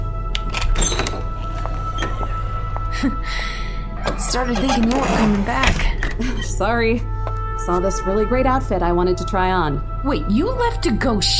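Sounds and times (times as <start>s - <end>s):
door opening with mechanical clunks and thuds: 0.4s - 2.8s, 3.9s - 6.6s
speech: 3.0s - 3.6s, 4.3s - 7.1s, 7.7s - 11.3s.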